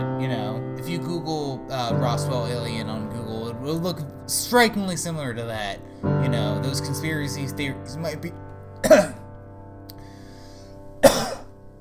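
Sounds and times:
speech: 0:00.2 - 0:09.1
person sneezing: 0:11.0 - 0:11.5.

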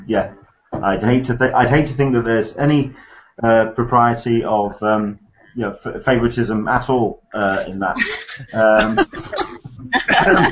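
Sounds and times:
speech: 0:00.1 - 0:10.4
person chuckling: 0:07.4 - 0:10.4
person fake coughing: 0:08.0 - 0:10.4.

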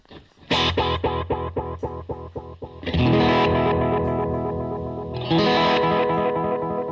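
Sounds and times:
distorted electric guitar through a delay pedal: 0:00.1 - 0:06.9.

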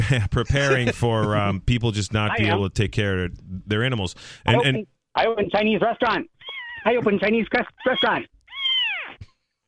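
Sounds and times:
speech: 0:00.1 - 0:08.4
cat meowing: 0:06.4 - 0:06.9, 0:08.0 - 0:09.2.

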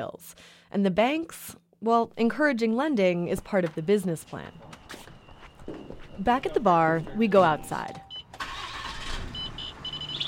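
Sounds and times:
speech: 0:00.0 - 0:05.0, 0:06.2 - 0:08.1
pickup truck engine starting outside a bar: 0:08.2 - 0:10.2.

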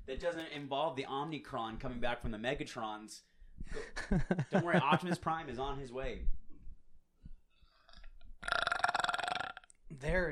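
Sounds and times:
speech: 0:00.1 - 0:06.4, 0:09.9 - 0:10.3
long loud rumbling burp: 0:08.4 - 0:09.7.

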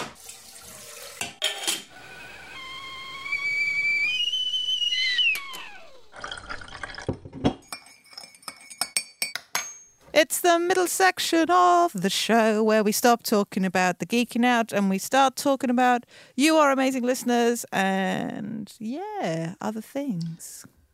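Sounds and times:
cups and crockery clinking: 0:01.2 - 0:01.9, 0:06.2 - 0:09.9
kettle whistling: 0:01.4 - 0:06.9
speech: 0:10.2 - 0:20.8.

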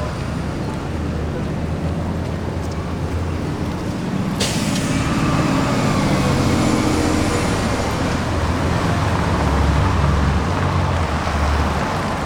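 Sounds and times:
traffic engine rumble at a city street corner: 0:00.0 - 0:12.2
hiss of released air from large vehicle brakes: 0:04.3 - 0:07.6.

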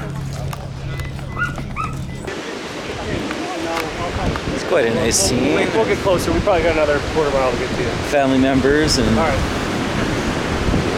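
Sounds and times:
faint voices murmuring: 0:00.0 - 0:10.4
steady roar of surf at a beach: 0:00.0 - 0:10.9
wind at a beach: 0:00.0 - 0:10.9
dogs yipping and barking at a beach: 0:01.0 - 0:02.3
speech: 0:04.7 - 0:09.6.

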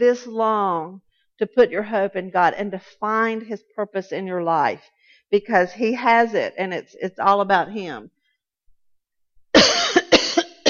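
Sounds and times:
speech: 0:00.0 - 0:08.2
loud chesty coughs: 0:09.6 - 0:10.6.

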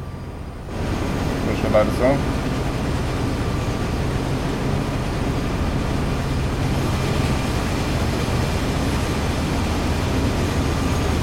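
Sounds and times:
moving freight train rumbling with rattling wheels: 0:00.0 - 0:11.2
speech: 0:01.6 - 0:02.4.

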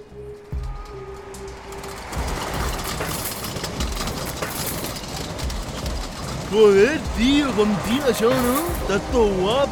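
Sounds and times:
car engine accelerating: 0:00.5 - 0:09.3
speech: 0:06.5 - 0:09.6.

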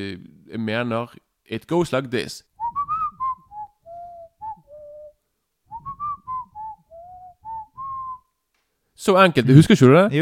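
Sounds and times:
speech: 0:00.0 - 0:02.5, 0:09.0 - 0:10.2
person whistling a simple theme melody: 0:02.6 - 0:05.1, 0:05.7 - 0:08.2.

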